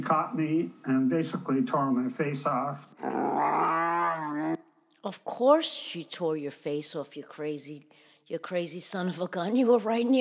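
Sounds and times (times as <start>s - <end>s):
speech: 0.0s - 10.1s
grizzly bear growling: 3.0s - 4.6s.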